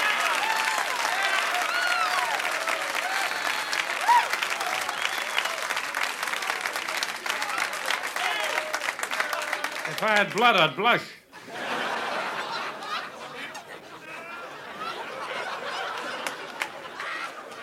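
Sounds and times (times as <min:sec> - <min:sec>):
faint cheers: 0:00.0 - 0:06.7, 0:07.3 - 0:10.0
audience applause for a one-liner comedian: 0:00.0 - 0:11.0, 0:14.8 - 0:17.6
speech: 0:10.0 - 0:11.2
laughter: 0:11.3 - 0:17.6.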